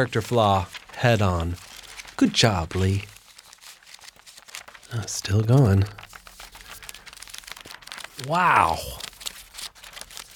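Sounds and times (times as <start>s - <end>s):
speech: 0.0s - 1.6s, 2.2s - 3.1s, 4.9s - 6.0s, 8.2s - 9.0s
long paper list crinkling and rustling as it unrolls: 0.0s - 10.3s.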